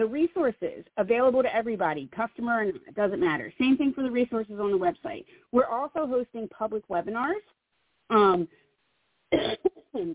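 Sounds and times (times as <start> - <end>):
speech: 0.0 - 8.6, 9.3 - 10.1
person coughing: 9.3 - 10.1
throat clearing: 9.4 - 10.1.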